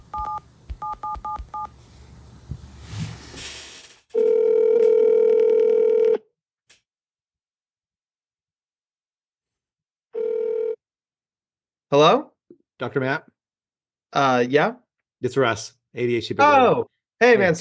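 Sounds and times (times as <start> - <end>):
phone ringback tone: 0.0 - 1.7, 4.2 - 6.2, 10.2 - 10.8
phone touch-tone beeps as a number is keyed in: 0.0 - 1.7
speech: 12.0 - 12.2, 12.8 - 13.3, 14.1 - 17.5.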